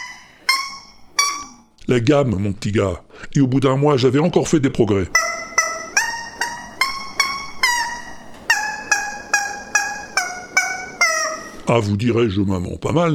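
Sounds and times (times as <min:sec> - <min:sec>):
rubber chicken toy squawking a quick melody: 0:00.0 - 0:01.7, 0:05.1 - 0:11.8
speech: 0:01.9 - 0:05.3, 0:11.7 - 0:13.1.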